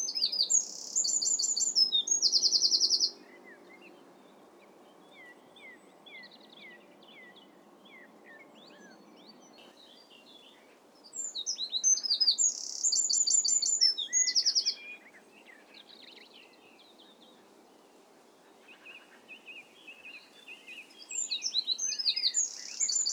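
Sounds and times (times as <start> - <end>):
soft wren chirps: 0.0 - 3.6, 5.2 - 17.4, 18.7 - 23.1
steady background noise: 0.0 - 23.1
wren song of high trills and warbles: 0.0 - 23.1.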